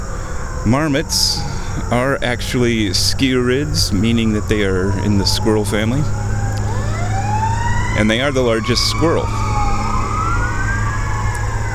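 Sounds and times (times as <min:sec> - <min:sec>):
fire engine and ambulance engines rumbling on Blondo Street: 0:00.0 - 0:11.7
fire engine and ambulance sirens wailing: 0:00.0 - 0:11.7
speech: 0:00.7 - 0:06.3, 0:08.0 - 0:09.4.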